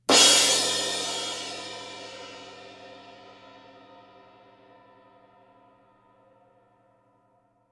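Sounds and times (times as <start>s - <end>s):
Avedis crash cymbal: 0.1s - 5.4s.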